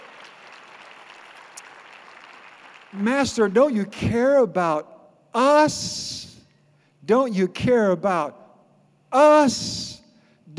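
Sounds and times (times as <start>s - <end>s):
congregation clapping hands during a church service: 0.0s - 3.6s
speech: 2.9s - 6.3s, 7.1s - 8.4s, 9.1s - 10.0s.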